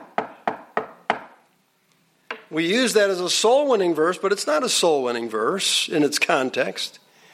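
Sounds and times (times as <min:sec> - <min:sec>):
knocking on a wooden surface: 0:00.0 - 0:01.4
speech: 0:02.5 - 0:07.0.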